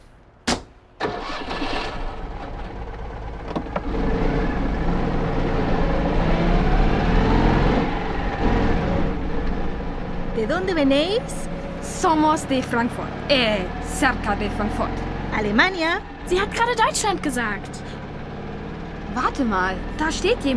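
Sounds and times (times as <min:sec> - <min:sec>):
sharp thump: 0:00.4 - 0:00.8
car engine starting and running as the car gets under way: 0:00.9 - 0:20.5
speech: 0:10.4 - 0:17.9, 0:19.2 - 0:20.5.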